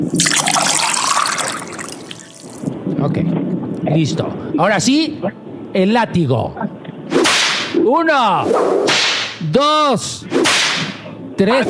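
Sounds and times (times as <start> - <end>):
speech: 0.0 - 0.5, 3.0 - 6.8, 7.8 - 10.5, 11.4 - 11.6
holy water being poured: 0.0 - 2.7.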